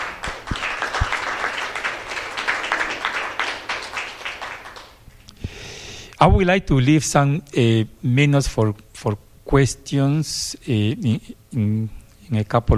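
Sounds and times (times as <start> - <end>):
audience applauding staff members: 0.0 - 5.0
speech: 6.2 - 12.7.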